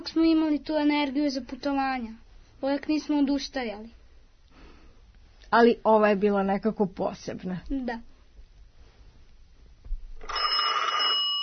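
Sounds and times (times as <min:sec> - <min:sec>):
speech: 0:00.1 - 0:04.0, 0:05.5 - 0:08.1
telephone ringing with an electronic tone: 0:10.2 - 0:11.4.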